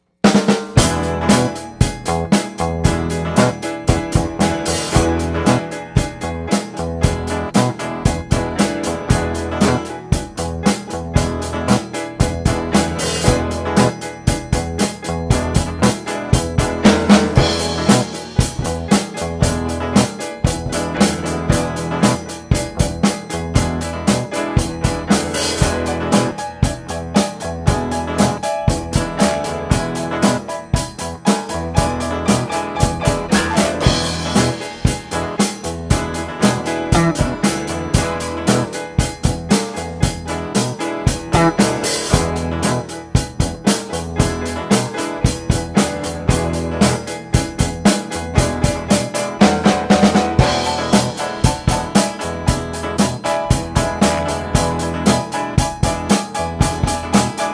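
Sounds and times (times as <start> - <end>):
E chord jam music: 0.4 - 57.5.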